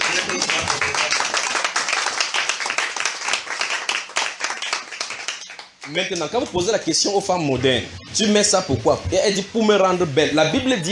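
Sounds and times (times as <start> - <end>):
church congregation applauding: 0.0 - 6.3
speech: 5.9 - 10.8.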